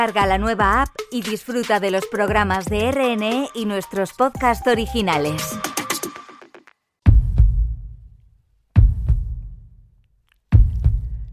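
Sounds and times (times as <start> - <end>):
speech: 0.0 - 5.7
slow deep heartbeat: 7.1 - 7.9, 8.8 - 9.7, 10.5 - 11.3.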